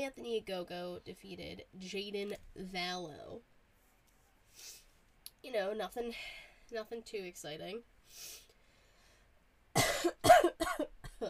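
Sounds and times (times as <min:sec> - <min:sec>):
speech: 0:00.0 - 0:03.5, 0:05.4 - 0:08.4, 0:10.0 - 0:11.2
person coughing harshly: 0:09.8 - 0:11.2.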